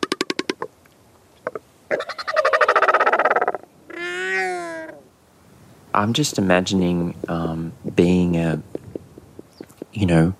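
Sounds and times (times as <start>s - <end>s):
Southern Royal Albatross calling: 1.4s - 5.1s, 8.6s - 10.3s
speech: 6.0s - 8.8s, 10.0s - 10.3s.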